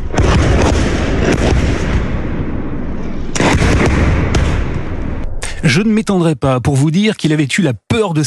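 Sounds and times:
rocket explosions in a war zone: 0:00.0 - 0:05.9
speech: 0:05.7 - 0:08.2.

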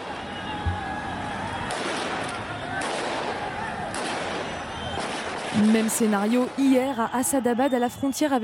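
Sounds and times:
people shouting: 0:00.0 - 0:05.0
loud continuous roar of crowd noise: 0:00.0 - 0:08.4
gunshots fired to disperse a crowd: 0:01.6 - 0:06.6
speech: 0:05.6 - 0:08.4.

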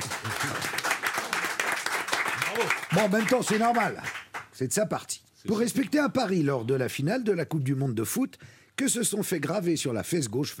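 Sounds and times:
studio audience applause: 0:00.0 - 0:04.5
speech: 0:02.6 - 0:10.5.

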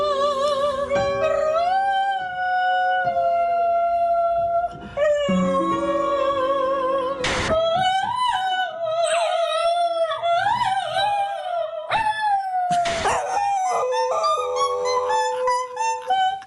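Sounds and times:
person singing: 0:00.0 - 0:12.0, 0:12.8 - 0:16.4
dog howling along with singing: 0:08.3 - 0:16.4.

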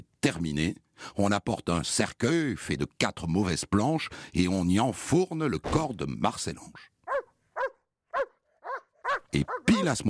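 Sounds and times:
speech: 0:00.2 - 0:06.9, 0:09.3 - 0:10.0
guard dog barking: 0:07.1 - 0:10.0.

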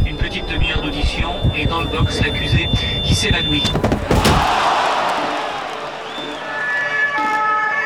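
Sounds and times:
street noise in Vesoul France: 0:00.0 - 0:07.8
speech: 0:00.4 - 0:04.7
heavy door slamming: 0:03.6 - 0:06.1.

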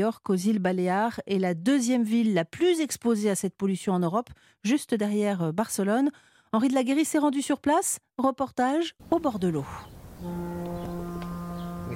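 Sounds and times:
speech: 0:00.0 - 0:10.9
deep ship horn blast in a harbor: 0:10.2 - 0:11.9
faint harbor clatter: 0:10.2 - 0:11.9.

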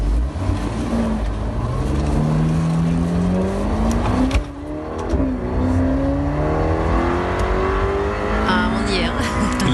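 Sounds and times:
Ferrari Portofino sports car 3.9-liter twin-turbo V8 engine revving: 0:00.1 - 0:09.7.

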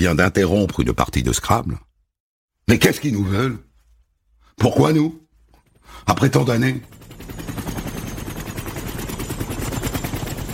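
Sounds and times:
speech: 0:00.0 - 0:01.9, 0:02.7 - 0:03.7, 0:04.6 - 0:05.2, 0:05.9 - 0:07.6
helicopter rotor thudding as the helicopter lands: 0:05.6 - 0:10.5.

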